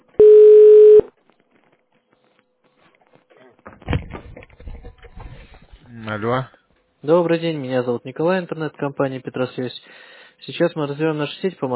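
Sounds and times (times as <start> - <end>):
telephone ring tone while a call connects to a sales department: 0.2 - 1.1
speech: 6.1 - 11.7.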